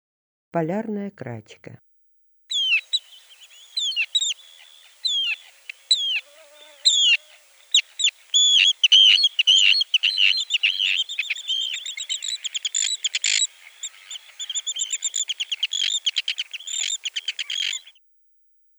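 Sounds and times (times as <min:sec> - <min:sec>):
Arctic tern calling: 0:02.5 - 0:18.0.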